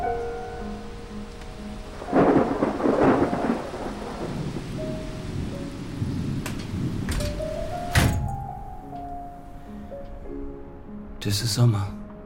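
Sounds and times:
steady rain pouring down: 0.0 - 8.7
thunder rumbling: 0.0 - 8.7
sharp thunder cracks: 1.8 - 8.4
speech: 11.3 - 12.0.

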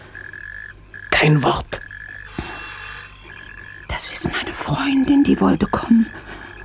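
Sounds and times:
steady hum: 0.0 - 6.6
speech: 1.2 - 1.7, 4.7 - 6.3
electric doorbell ringing: 2.3 - 3.9.

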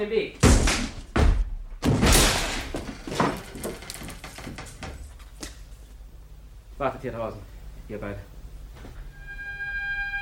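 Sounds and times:
speech: 0.0 - 0.6, 6.8 - 8.3
door violently forced open with a heavy slam: 0.4 - 4.8.

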